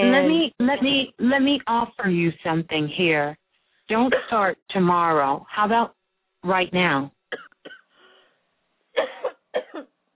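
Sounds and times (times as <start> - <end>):
coughing: 0.0 - 0.3, 7.3 - 7.9, 9.0 - 10.0
speech: 0.7 - 7.8.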